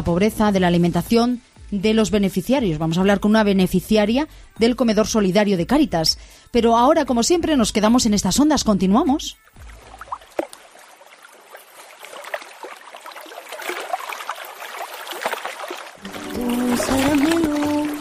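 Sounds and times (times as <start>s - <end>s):
speech: 0.0s - 9.6s
water gushing from a tap: 9.6s - 17.9s.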